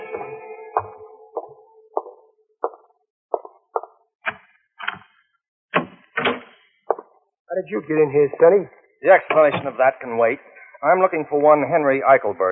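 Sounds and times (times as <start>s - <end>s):
hard footsteps approaching on a solid floor: 0.0s - 3.9s
speech: 7.6s - 12.4s.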